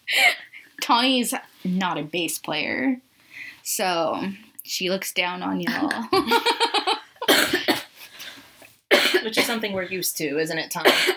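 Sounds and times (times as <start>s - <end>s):
speech: 0.9s - 6.6s, 9.3s - 11.1s
person coughing in a fit: 7.2s - 7.9s, 8.9s - 9.6s, 10.8s - 11.1s.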